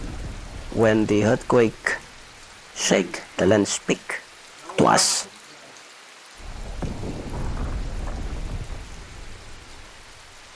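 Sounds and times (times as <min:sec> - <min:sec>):
deep rolling thunder in a thunderstorm: 0:00.0 - 0:02.6, 0:06.4 - 0:10.5
heavy rain in a thunderstorm: 0:00.0 - 0:10.5
speech: 0:00.8 - 0:01.9, 0:02.8 - 0:04.2, 0:04.8 - 0:05.3.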